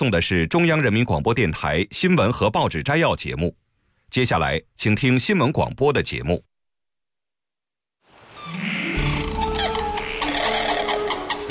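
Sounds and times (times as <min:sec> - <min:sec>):
speech: 0:00.0 - 0:06.5
crane calling: 0:08.3 - 0:11.5.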